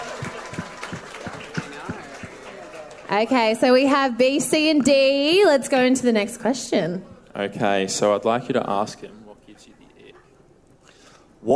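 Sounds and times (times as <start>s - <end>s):
crowd applauding at an evening stage show: 0.0s - 4.1s
speech: 3.1s - 9.2s.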